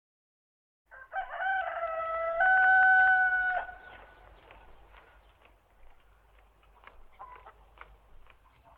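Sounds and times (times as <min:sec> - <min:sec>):
rooster crowing: 0:00.9 - 0:03.8
farmyard bird calls: 0:03.5 - 0:08.7
chickens clucking: 0:03.7 - 0:08.7.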